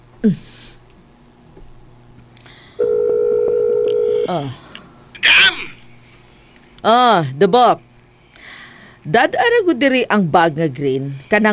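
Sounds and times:
speech: 0.2s - 0.5s, 4.3s - 4.6s, 6.8s - 7.9s, 9.0s - 11.5s
quiet low hum: 2.2s - 11.5s
telephone tone while a call is being placed: 2.8s - 4.4s.

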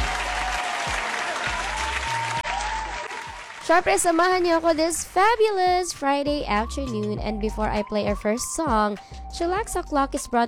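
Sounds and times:
thunderous applause of many hands: 0.0s - 4.4s
speech: 3.7s - 10.4s.

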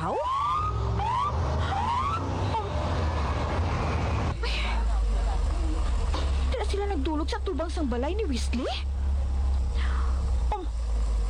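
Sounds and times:
police patrol car siren whoops: 0.0s - 2.8s
police patrol car engine noise: 0.0s - 11.2s
speech: 7.7s - 9.0s.

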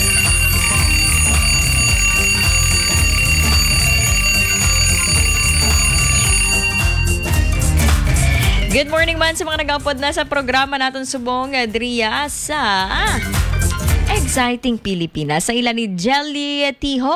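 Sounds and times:
alarm clock ringing with bright metallic bell tones: 0.0s - 8.6s
speech: 8.8s - 13.4s, 14.1s - 17.1s.

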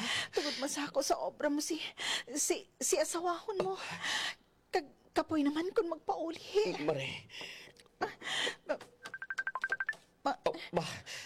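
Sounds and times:
speech: 0.4s - 8.9s, 10.2s - 11.2s
cellphone ringing with bright electronic beeps: 9.0s - 10.0s.

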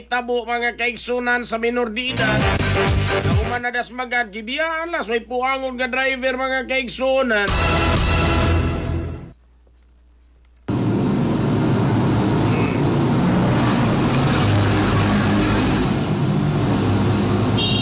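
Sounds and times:
speech: 0.0s - 8.0s
loud steady road traffic engine and tire noise: 10.7s - 17.8s.

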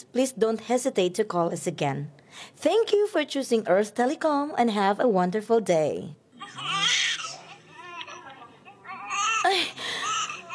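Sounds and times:
speech: 0.1s - 7.2s
baby crying: 6.4s - 10.5s.

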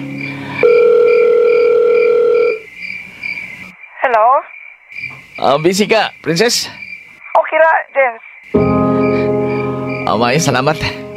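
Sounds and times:
telephone dial tone while placing a call: 0.6s - 2.6s
speech: 5.4s - 6.8s, 7.5s - 9.4s, 10.1s - 11.1s.

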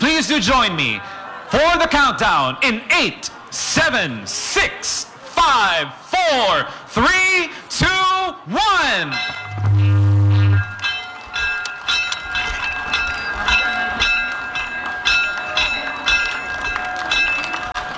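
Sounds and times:
speech: 0.2s - 10.0s
ceremonial bell ringing: 9.1s - 17.7s
loud low tone: 9.3s - 10.8s.

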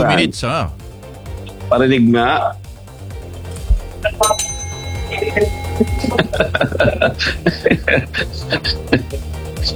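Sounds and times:
speech: 0.0s - 0.8s, 1.7s - 2.6s, 5.2s - 9.7s
small hand bell struck: 4.1s - 6.7s
laughter: 5.1s - 9.7s.

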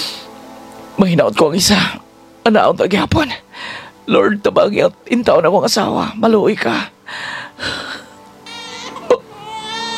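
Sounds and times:
speech: 1.0s - 7.8s
newborn baby crying: 8.4s - 9.9s.

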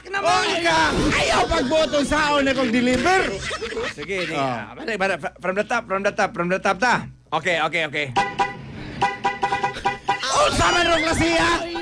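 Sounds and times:
laughter: 0.0s - 4.9s
faint hum: 0.0s - 11.8s
speech: 0.2s - 9.2s, 10.4s - 11.7s
car horn honking: 8.2s - 10.8s.

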